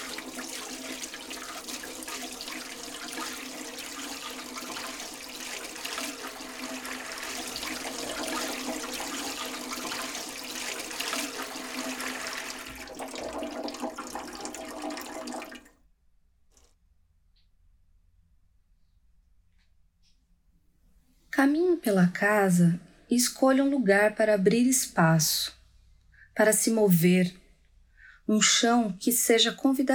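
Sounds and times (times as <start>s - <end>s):
water running from a sink tap: 0.0s - 15.7s
speech: 21.4s - 25.6s, 26.4s - 27.4s, 28.3s - 29.9s.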